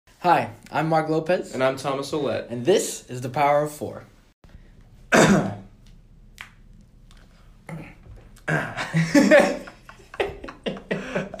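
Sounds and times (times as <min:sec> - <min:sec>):
speech: 0:00.2 - 0:04.1, 0:05.3 - 0:05.6, 0:08.5 - 0:09.6
person clearing throat: 0:05.1 - 0:05.7, 0:07.8 - 0:09.0
person coughing: 0:05.1 - 0:05.7, 0:08.4 - 0:09.5
laughter: 0:08.6 - 0:11.3.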